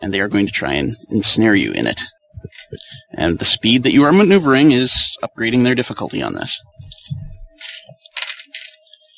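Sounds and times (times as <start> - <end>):
speech: 0.0 - 7.0
red dice clattering across a hard surface: 6.9 - 8.9.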